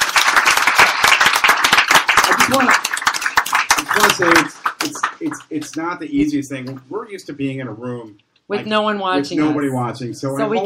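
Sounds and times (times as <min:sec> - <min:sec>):
audience applauding: 0:00.0 - 0:05.9
speech: 0:02.5 - 0:02.9, 0:04.0 - 0:10.6.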